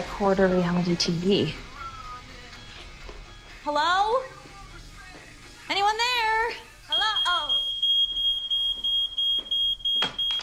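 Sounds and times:
speech: 0.0s - 1.7s, 3.7s - 4.4s
fire alarm beeping in a restaurant: 6.9s - 10.4s.

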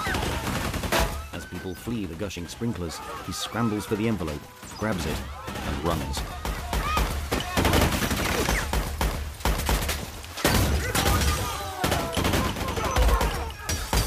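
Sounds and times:
gunfire bursts from shotguns and soldiers' weapons in an office shootout: 0.0s - 2.3s, 4.4s - 14.0s
speech: 1.6s - 6.4s.

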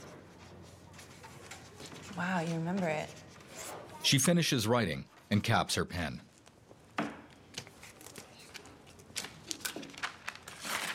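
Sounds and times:
speech: 2.2s - 3.2s, 4.0s - 6.3s
paper tearing as a piece is ripped off a pad: 9.2s - 10.9s.

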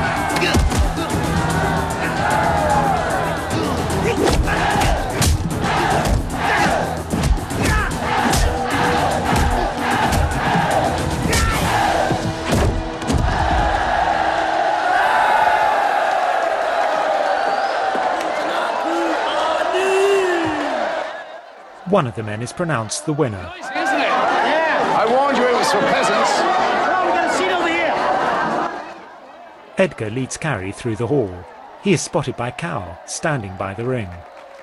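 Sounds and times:
huge crowd roaring, shouting and cheering at a fight in a ring: 0.0s - 34.6s
speech: 22.0s - 23.6s, 25.0s - 27.5s, 29.8s - 34.3s.

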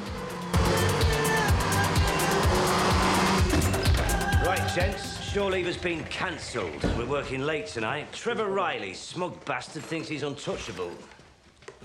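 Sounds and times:
red coupe engine roaring racing through tunnels: 0.0s - 7.2s
speech: 4.8s - 11.2s.

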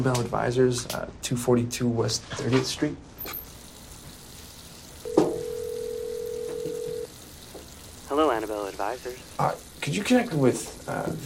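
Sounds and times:
speech: 0.0s - 3.4s, 8.2s - 11.2s
steady mid-pitched telephone line tone of a cell phone call: 5.0s - 7.1s.

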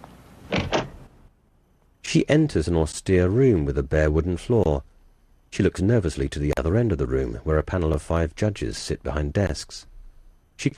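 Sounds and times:
door opening with mechanical clunks in a dance academy hallway: 0.5s - 1.1s
speech: 2.1s - 4.9s, 5.5s - 9.9s, 10.6s - 10.7s.

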